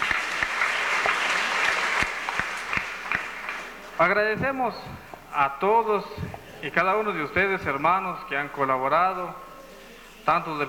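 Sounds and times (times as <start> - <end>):
audience applause: 0.0 - 4.4
speech: 4.0 - 9.4, 10.2 - 10.6.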